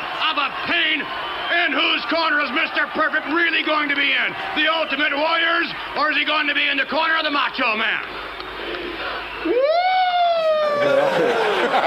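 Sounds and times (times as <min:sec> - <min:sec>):
speech: 0:00.4 - 0:08.8, 0:10.8 - 0:11.8
laughter: 0:09.0 - 0:11.8
soft single siren wail: 0:09.4 - 0:11.3.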